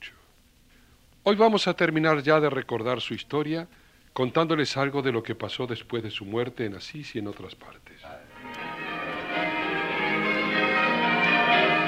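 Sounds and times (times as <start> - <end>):
speech: 1.2 - 8.3
church bells ringing: 8.3 - 11.8.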